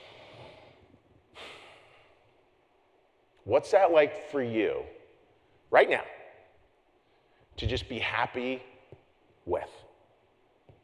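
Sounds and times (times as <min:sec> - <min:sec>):
deep breath: 0:00.0 - 0:02.3
speech: 0:03.5 - 0:05.0, 0:05.7 - 0:06.2, 0:07.6 - 0:08.7, 0:09.5 - 0:09.8.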